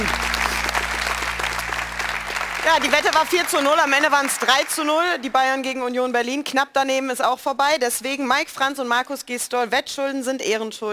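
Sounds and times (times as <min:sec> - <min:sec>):
group applauding: 0:00.0 - 0:05.8
speech: 0:02.7 - 0:10.9.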